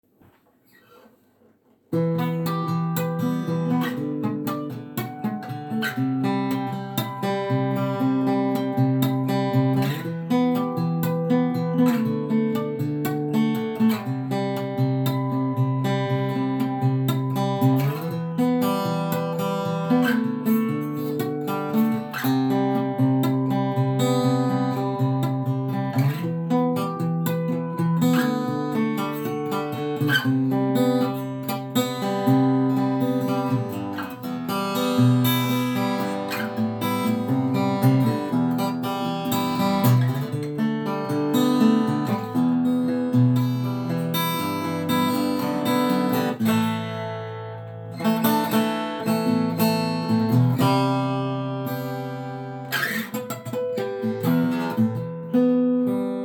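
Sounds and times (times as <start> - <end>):
acoustic music: 1.9 - 56.2.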